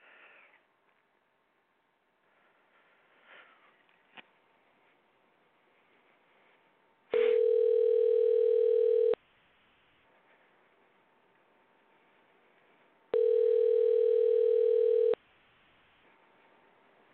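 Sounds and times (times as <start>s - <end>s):
telephone line tones while placing a call: 7.2s - 9.2s, 13.2s - 15.2s.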